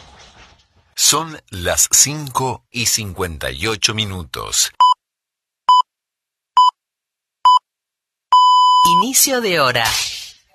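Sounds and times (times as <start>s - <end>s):
speech: 1.1s - 4.8s, 8.8s - 10.2s
radio top-of-the-hour time signal beeps: 8.4s - 9.2s.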